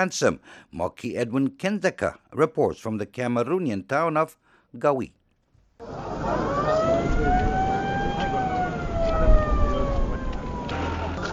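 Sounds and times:
speech: 0:00.0 - 0:05.2
ambulance siren wailing: 0:05.8 - 0:11.3
crowd bustle: 0:05.8 - 0:11.3
engines: 0:05.8 - 0:11.3.

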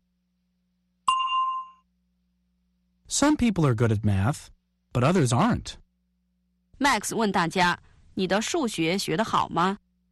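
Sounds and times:
bell ding as an answer cue in a language lesson: 0:01.1 - 0:01.8
speech: 0:03.1 - 0:05.8, 0:06.8 - 0:09.8.

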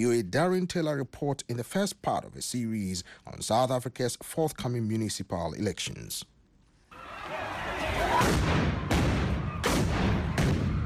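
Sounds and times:
speech: 0:00.0 - 0:06.3, 0:07.9 - 0:08.8
stun grenades fired by police at people destroying municipal property: 0:08.2 - 0:10.8.

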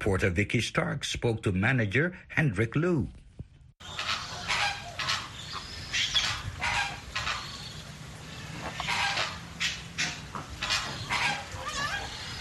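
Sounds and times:
speech: 0:00.0 - 0:03.2
flock of flamingos honking in a walk-through aviary enclosure: 0:03.8 - 0:12.4.

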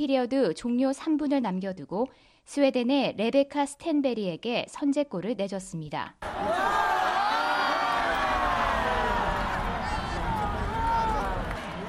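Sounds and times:
speech: 0:00.0 - 0:06.8
arena crowd cheering: 0:06.2 - 0:11.8.

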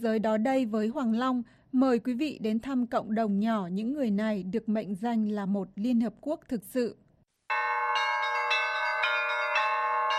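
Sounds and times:
speech: 0:00.0 - 0:07.8
Orthodox church bells ringing: 0:07.5 - 0:10.1.

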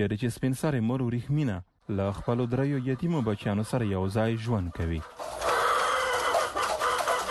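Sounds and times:
speech: 0:00.0 - 0:05.3
hens clucking in a small mud-brick coop: 0:01.7 - 0:07.2.

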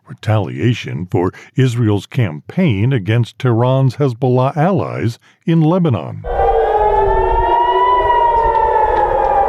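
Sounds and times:
speech: 0:00.2 - 0:06.4
civil defense air raid siren wailing: 0:06.2 - 0:09.4.

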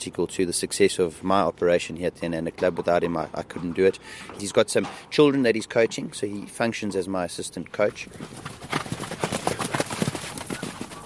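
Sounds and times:
speech: 0:00.0 - 0:08.9
horses galloping around a dirt track guided by a rider: 0:07.7 - 0:11.0.

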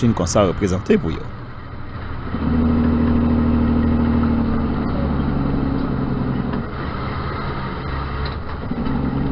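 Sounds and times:
speech: 0:00.0 - 0:01.3
Freightliner Inspiration semi truck engine rumbling during a demonstration drive: 0:00.0 - 0:09.3.

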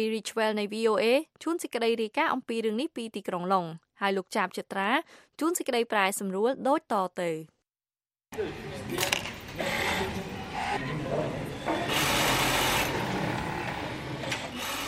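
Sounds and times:
speech: 0:00.0 - 0:07.6, 0:08.3 - 0:09.8
sewing machines running in a textile factory in Rwanda: 0:09.5 - 0:10.8, 0:11.9 - 0:14.8.

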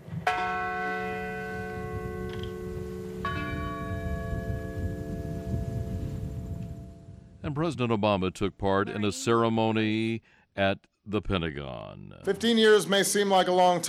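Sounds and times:
large memorial bell tolling at a ceremony in rural Pennsylvania: 0:00.3 - 0:07.4
speech: 0:07.5 - 0:13.8.

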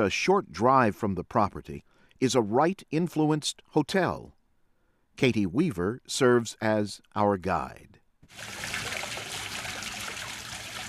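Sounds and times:
speech: 0:00.0 - 0:04.4, 0:05.2 - 0:08.9
fountain water splashing and trickling onto the ground at Taliesin West in Arizona: 0:08.3 - 0:10.8.

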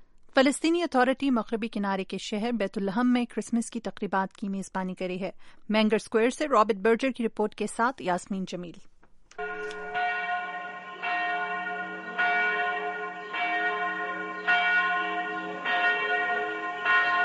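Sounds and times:
speech: 0:00.4 - 0:09.8
traditional church bells ringing at the Church of the Nativity in Bethlehem during Christmas: 0:09.4 - 0:17.2.

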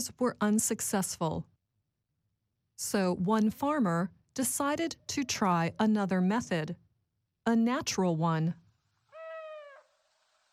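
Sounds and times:
speech: 0:00.0 - 0:01.6, 0:02.8 - 0:06.8, 0:07.4 - 0:08.6
owl hooting: 0:09.1 - 0:10.0.

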